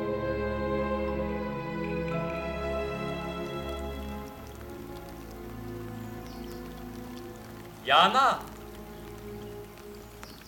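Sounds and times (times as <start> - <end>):
soft steady warm rain falling: 1.0 - 10.4
speech: 7.9 - 8.5.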